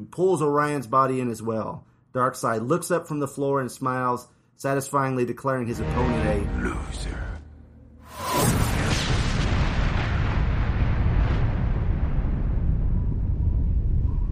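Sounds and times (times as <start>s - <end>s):
speech: 0.1s - 7.3s
massive explosion in a superhero battle: 5.8s - 14.1s.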